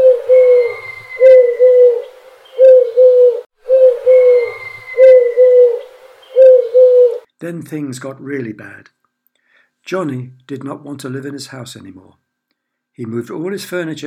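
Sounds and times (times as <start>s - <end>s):
cuckoo calling in two-note phrases: 0.0s - 7.3s
speech: 7.5s - 9.0s, 9.8s - 12.2s, 13.0s - 14.0s.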